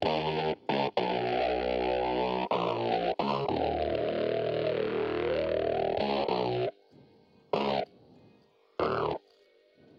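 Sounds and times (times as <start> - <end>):
bass with chorus effect: 0.0 - 6.7, 7.6 - 7.9, 8.8 - 9.2.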